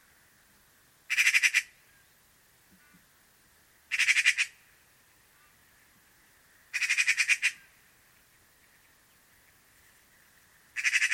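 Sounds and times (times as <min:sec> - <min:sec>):
Eurasian magpie grating chatter: 0:01.1 - 0:01.8, 0:03.9 - 0:04.6, 0:06.7 - 0:07.7, 0:10.8 - 0:11.1.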